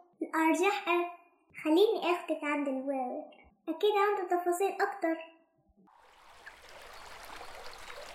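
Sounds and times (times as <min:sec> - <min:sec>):
speech: 0:00.4 - 0:05.3
strong flowing river water in summer: 0:05.9 - 0:08.1.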